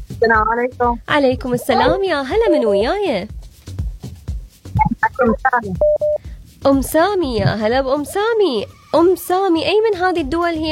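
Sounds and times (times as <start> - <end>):
low rhythmic telephone line bursts as a call connects: 0.0 - 8.6
speech: 0.2 - 3.4, 5.0 - 10.6
warbling electronic telephone line beeps: 4.8 - 6.1.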